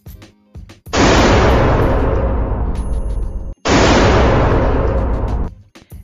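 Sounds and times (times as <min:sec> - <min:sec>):
firearm gunshots with long rumbling echo: 0:01.0 - 0:05.5.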